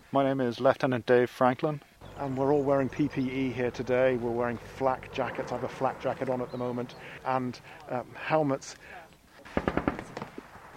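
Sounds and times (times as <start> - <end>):
speech: 0.1 - 9.0
armoured fighting vehicle machine gun fire during pre-deployment confirmation training: 9.5 - 10.7.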